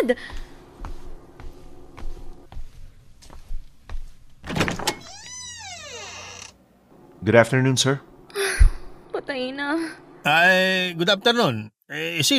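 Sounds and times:
speech: 0:00.0 - 0:00.5, 0:07.2 - 0:08.1, 0:09.4 - 0:12.3
soft footsteps: 0:00.0 - 0:04.5
door hinges creaking: 0:04.4 - 0:06.6.

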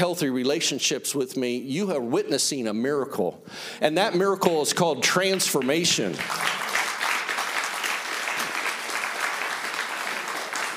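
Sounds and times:
speech: 0:00.0 - 0:06.7
audience applause: 0:05.6 - 0:10.7.

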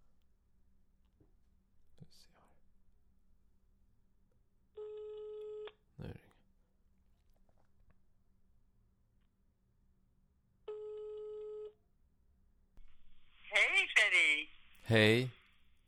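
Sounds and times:
faint whispering: 0:02.0 - 0:02.7
electronic ringback tones on a phone line: 0:10.7 - 0:11.8
person answering the phone: 0:13.5 - 0:14.5
speech: 0:14.2 - 0:15.4.

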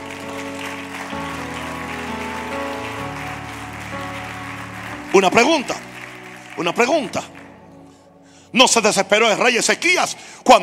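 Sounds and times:
audience applauding loudly: 0:00.0 - 0:08.0
sustained keyboard chords: 0:00.0 - 0:10.4
speech: 0:05.2 - 0:05.9, 0:06.6 - 0:07.4, 0:08.5 - 0:10.6.

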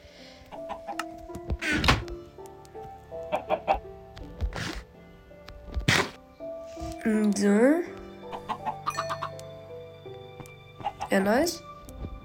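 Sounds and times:
video game chickens clucking: 0:00.5 - 0:01.8, 0:03.2 - 0:03.8, 0:08.2 - 0:09.4
speech: 0:07.0 - 0:07.9, 0:11.1 - 0:11.7
tonal game-like sound effects: 0:08.9 - 0:09.4.

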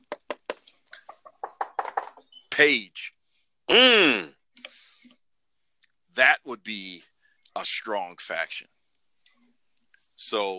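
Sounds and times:
knuckles knocking on wood: 0:01.2 - 0:02.2
speech: 0:02.6 - 0:04.4, 0:06.2 - 0:08.7, 0:10.2 - 0:10.5.

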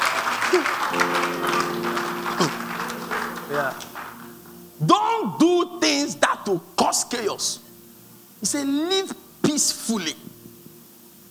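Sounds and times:
audience clapping steadily in praise: 0:00.0 - 0:04.6
sustained musical tones: 0:00.9 - 0:09.4
speech: 0:03.5 - 0:03.9, 0:04.8 - 0:07.6, 0:08.4 - 0:10.3.

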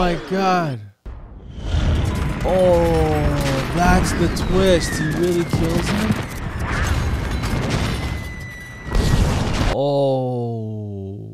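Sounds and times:
speech: 0:00.0 - 0:00.9, 0:02.4 - 0:06.9, 0:09.8 - 0:10.8
many small explosions in a movie: 0:01.1 - 0:09.8.

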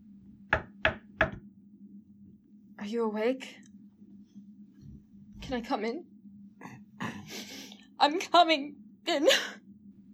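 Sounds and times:
faint steady hum: 0:00.0 - 0:10.1
woman knocking on a white-painted guest bedroom door: 0:00.5 - 0:01.4
speech: 0:02.8 - 0:03.7, 0:05.5 - 0:06.1, 0:08.0 - 0:09.6.

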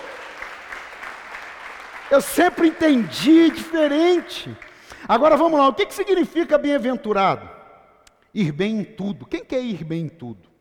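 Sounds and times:
crowd clapping in sustained applause: 0:00.0 - 0:04.8
speech: 0:02.1 - 0:07.6, 0:08.4 - 0:10.5.

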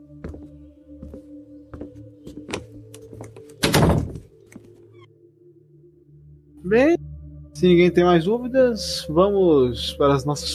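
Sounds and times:
door closing: 0:03.5 - 0:04.3
speech: 0:06.7 - 0:07.0, 0:07.6 - 0:10.5.

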